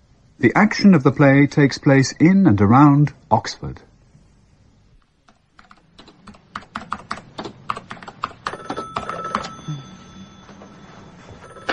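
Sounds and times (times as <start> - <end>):
speech: 0.4 - 3.9
rapid keyboard typing: 5.2 - 9.7
office telephone ringing with electronic trill: 8.4 - 11.7.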